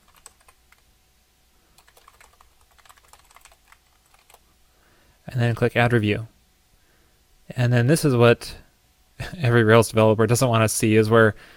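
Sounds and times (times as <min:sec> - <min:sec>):
computer keyboard typing a review into a web application's product page: 0:00.0 - 0:00.8, 0:01.8 - 0:04.4
speech: 0:05.3 - 0:06.3, 0:07.5 - 0:08.6, 0:09.2 - 0:11.5.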